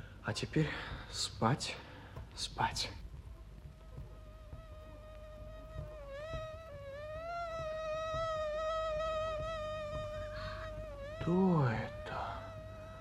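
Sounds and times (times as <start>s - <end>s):
faint low rumble: 0.0s - 12.9s
speech: 0.2s - 3.0s, 11.3s - 12.0s
mosquito whine: 3.3s - 12.9s.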